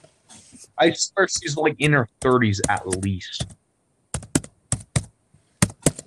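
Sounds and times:
speech: 0:00.8 - 0:03.6
computer keyboard clicking while searching online: 0:02.2 - 0:03.6, 0:04.2 - 0:06.0.

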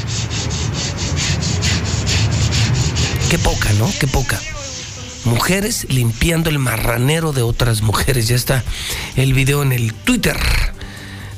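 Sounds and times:
sandpaper sanding a surface while cleaning up: 0:00.0 - 0:07.4
speech: 0:03.3 - 0:04.6, 0:05.2 - 0:10.8.

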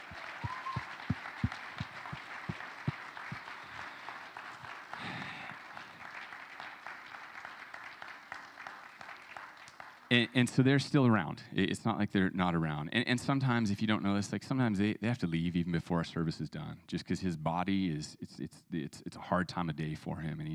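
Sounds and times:
crowd applauding for departing staff: 0:00.0 - 0:10.3
speech: 0:10.1 - 0:20.5.

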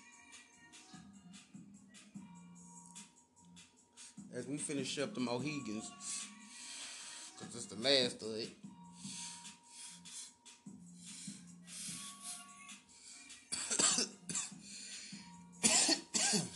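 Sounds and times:
speech: 0:04.4 - 0:06.1, 0:07.8 - 0:08.7
person coughing: 0:13.5 - 0:14.6, 0:15.6 - 0:16.5.

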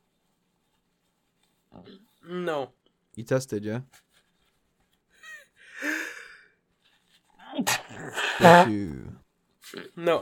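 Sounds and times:
speech: 0:01.8 - 0:04.1, 0:07.6 - 0:09.1, 0:09.7 - 0:10.1
loud sneeze with gasping inhales: 0:07.6 - 0:09.2.

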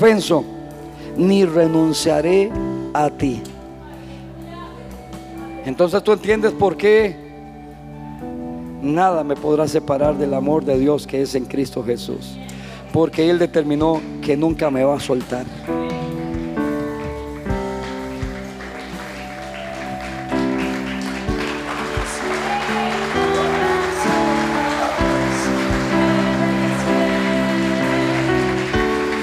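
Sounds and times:
speech: 0:00.0 - 0:00.5, 0:01.2 - 0:03.5, 0:05.6 - 0:07.2, 0:08.8 - 0:16.0
sustained keyboard chords: 0:00.0 - 0:29.2
crowd clapping: 0:16.0 - 0:29.2.

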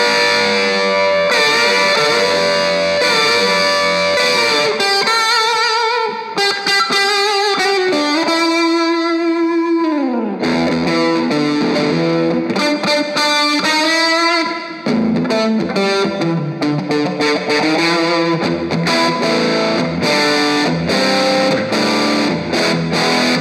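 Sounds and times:
distorted electric guitar through an amp's dirty channel with long washy reverb: 0:00.0 - 0:23.4.

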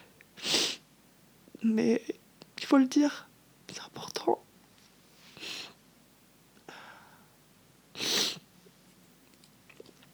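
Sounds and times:
speech: 0:01.6 - 0:04.4
person sniffling while crying: 0:05.3 - 0:05.8, 0:08.0 - 0:08.5.

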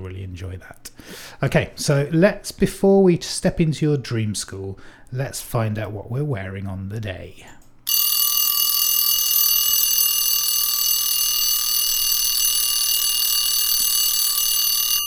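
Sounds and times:
speech: 0:00.4 - 0:07.6
electronic alarm clock ringing: 0:07.9 - 0:15.0.

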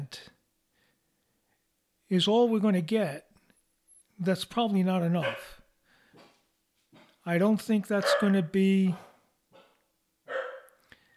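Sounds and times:
speech: 0:02.1 - 0:03.3, 0:04.2 - 0:05.6, 0:07.2 - 0:09.1
miniature Australian Shepherd barking: 0:05.2 - 0:05.6, 0:08.0 - 0:10.8.

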